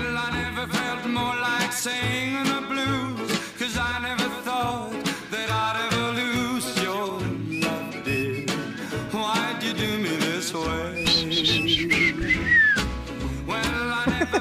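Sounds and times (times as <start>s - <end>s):
instrumental backing music: 0.4s - 14.3s
person whistling a melody: 7.4s - 9.0s, 10.9s - 13.0s
laughter: 14.0s - 14.3s.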